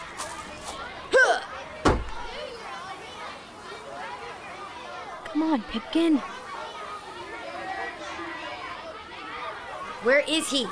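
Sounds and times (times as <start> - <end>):
thrown crabapple thumping against a wooden door: 1.8 - 2.4
speech: 5.4 - 6.4, 10.0 - 10.7.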